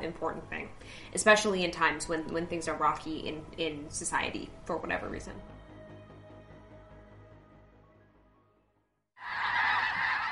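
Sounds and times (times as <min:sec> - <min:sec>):
speech: 0:00.0 - 0:05.6
chorus of many migrating geese honking outdoors at a lake: 0:09.2 - 0:10.2.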